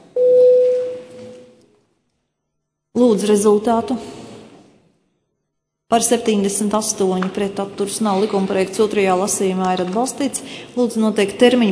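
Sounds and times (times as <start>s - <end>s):
parliament chamber electronic bell rung before a vote: 0.2s - 1.6s
speech: 3.1s - 4.1s, 5.9s - 11.6s.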